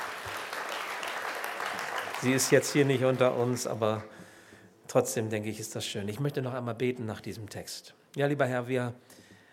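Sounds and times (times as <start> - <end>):
audience applauding: 0.0 - 4.1
speech: 2.2 - 4.2, 4.9 - 9.2.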